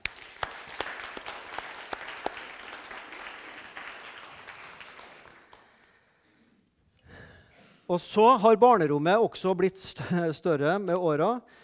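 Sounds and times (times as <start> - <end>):
audience applause: 0.0 - 5.7
speech: 7.9 - 11.6.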